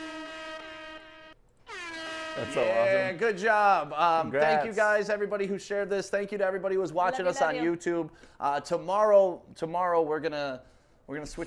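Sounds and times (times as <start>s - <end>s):
loud sustained air horn blast: 0.0s - 3.2s
speech: 2.4s - 11.4s.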